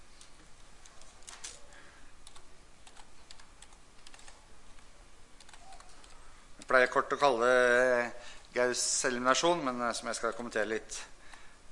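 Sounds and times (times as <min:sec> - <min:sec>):
soft typing on a computer keyboard: 0:02.2 - 0:04.8, 0:05.4 - 0:06.2
speech: 0:06.7 - 0:11.1.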